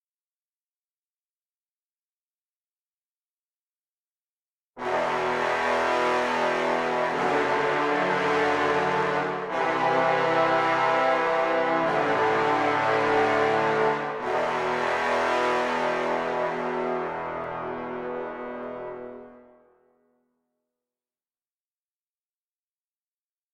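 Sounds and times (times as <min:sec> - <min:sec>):
trombones playing: 0:04.8 - 0:19.6.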